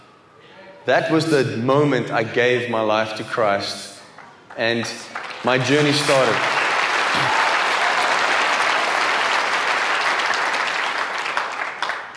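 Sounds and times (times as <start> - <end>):
speech: 0.8 - 3.9, 4.6 - 6.5
audience applause: 4.2 - 12.1.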